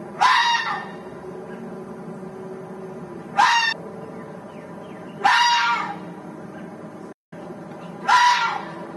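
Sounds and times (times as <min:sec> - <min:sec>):
fox giving long high-pitched yelping calls: 0:00.2 - 0:01.0, 0:03.4 - 0:03.8, 0:05.2 - 0:06.0, 0:08.0 - 0:08.8.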